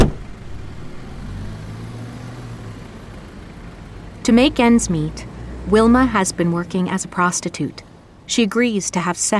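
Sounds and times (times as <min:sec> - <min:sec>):
car engine rumbling as car passes by: 0:00.0 - 0:06.2
speech: 0:04.2 - 0:09.3.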